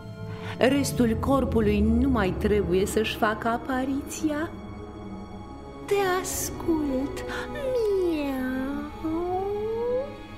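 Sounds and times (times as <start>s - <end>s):
speech: 0.6s - 4.6s, 5.9s - 7.9s
human voice imitating a cat's meow: 8.9s - 10.3s.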